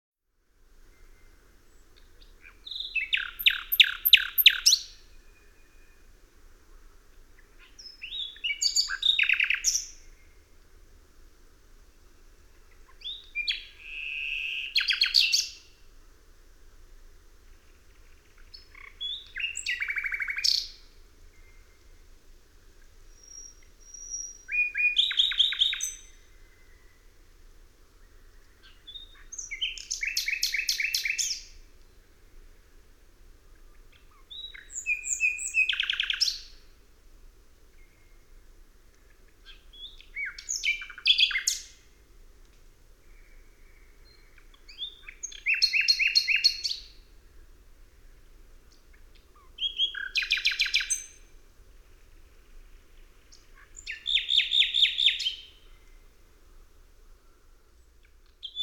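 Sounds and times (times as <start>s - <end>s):
common nightingale singing: 0.8s - 6.2s, 7.4s - 10.6s, 12.1s - 15.8s, 17.5s - 22.0s, 23.0s - 27.2s, 28.0s - 32.2s, 33.6s - 36.7s, 39.3s - 42.0s, 43.0s - 47.1s, 48.0s - 51.3s, 51.9s - 56.2s, 57.8s - 58.6s.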